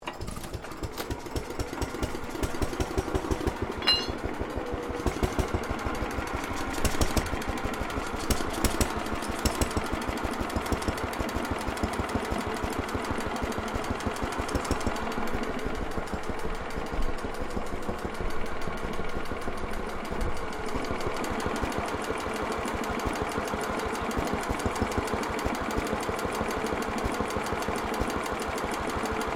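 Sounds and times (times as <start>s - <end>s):
1936 1.5hp engine operating: 0.0s - 29.3s.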